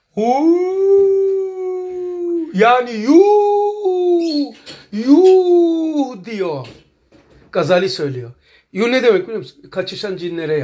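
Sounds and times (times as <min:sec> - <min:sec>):
person imitating howling dogs or jackals: 0:00.1 - 0:06.2
speech: 0:00.2 - 0:00.7, 0:02.5 - 0:03.5, 0:04.2 - 0:06.8, 0:07.5 - 0:10.6.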